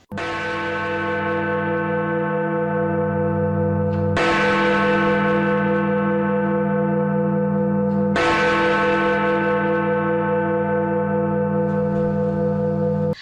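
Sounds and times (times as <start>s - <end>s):
deep tower clock bell tolling midnight: 0.1s - 13.2s.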